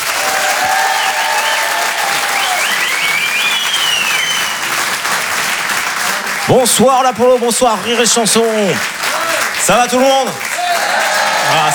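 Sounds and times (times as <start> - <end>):
audience at a comedy show applauding: 0.0 - 11.7
whistles: 0.5 - 4.9
speech: 6.5 - 9.0, 9.6 - 10.5, 11.5 - 11.7.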